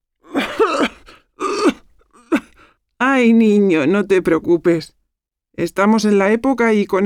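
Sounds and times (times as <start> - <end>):
elderly woman with a winter cold coughing harshly: 0.2 - 2.6
speech: 3.2 - 5.0, 5.6 - 7.0.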